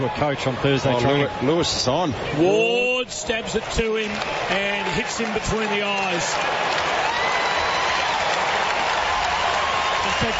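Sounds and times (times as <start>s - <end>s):
speech: 0.0s - 7.1s, 10.2s - 10.3s
large stadium crowd roaring and cheering: 0.0s - 10.3s
stadium crowd applause: 3.4s - 10.3s.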